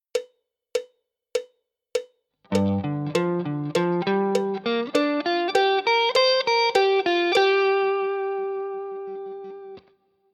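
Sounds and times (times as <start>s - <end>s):
G minor pentatonic connecting lick on guitar: 2.5s - 9.9s.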